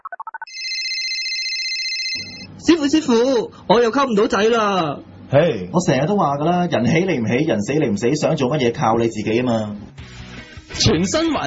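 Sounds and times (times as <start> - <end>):
warbling ring tone of an outgoing telephone call: 0.0 - 2.5
telephone dialing tones: 0.5 - 2.5
speech: 2.6 - 10.1, 10.8 - 11.4.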